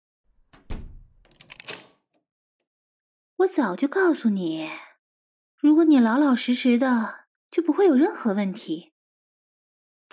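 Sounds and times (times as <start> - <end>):
door being locked with mechanical clunks and rattles: 0.4 - 2.1
heavy knock: 0.5 - 1.3
speech: 3.4 - 4.9, 5.6 - 8.9.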